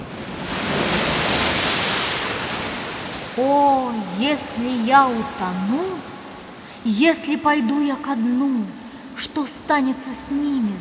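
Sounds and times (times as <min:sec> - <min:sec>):
roaring surf of a stormy sea with high waves: 0:00.0 - 0:06.8
speech: 0:04.2 - 0:06.1, 0:06.8 - 0:10.7.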